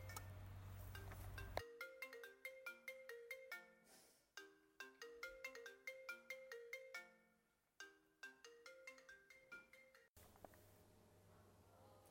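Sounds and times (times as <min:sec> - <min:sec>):
mobile phone ringtone: 0:00.8 - 0:10.1.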